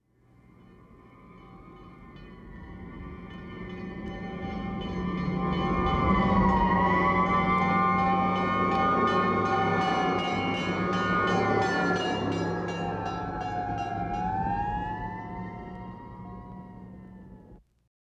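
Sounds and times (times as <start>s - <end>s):
big city noise: 0.1s - 17.6s
fire engine driving past: 2.4s - 17.6s.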